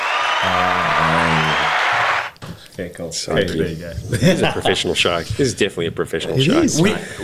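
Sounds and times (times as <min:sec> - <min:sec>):
canned applause with crowd cheering from a button: 0:00.0 - 0:02.4
speech: 0:02.8 - 0:07.2.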